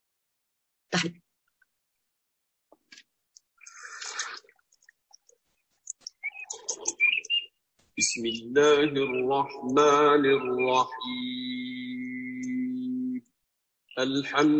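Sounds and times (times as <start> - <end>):
speech: 0.9 - 1.2, 8.0 - 12.5, 14.0 - 14.5
birds chirping and twittering: 3.6 - 13.2, 13.9 - 14.5.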